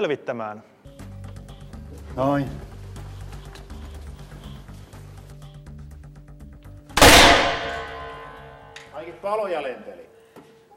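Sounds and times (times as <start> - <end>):
speech: 0.0 - 0.7, 2.2 - 2.7, 9.0 - 10.2
gunshot from 3D-printed plastic pistol: 7.0 - 8.6.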